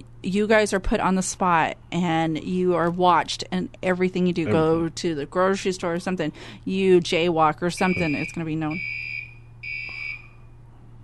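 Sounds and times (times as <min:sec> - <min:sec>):
steady low electrical hum: 0:00.0 - 0:11.0
speech: 0:00.2 - 0:09.0
fire alarm beeping in two high-pitched tones: 0:07.7 - 0:10.5.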